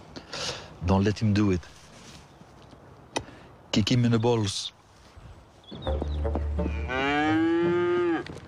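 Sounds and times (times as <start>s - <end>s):
speech: 0.8s - 1.8s, 3.7s - 4.8s
cow mooing: 6.7s - 8.3s.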